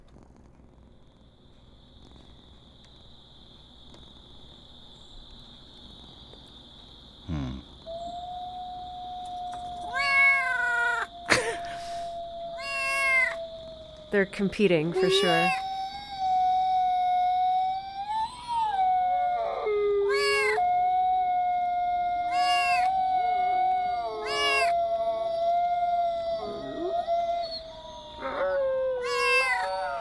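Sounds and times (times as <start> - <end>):
wolf howling: 7.9 - 30.0
cats meowing: 9.2 - 13.5, 14.9 - 16.6, 20.0 - 20.6, 22.2 - 23.0, 23.6 - 30.0
speech: 14.1 - 15.6.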